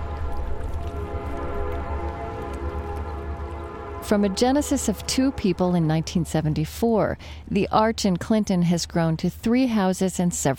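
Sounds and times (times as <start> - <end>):
train whistle blast on a busy rail line: 0.0 - 6.1
low rumble of a passing train on a busy rail line on the upper Mississippi: 0.0 - 7.6
speech: 4.1 - 10.5.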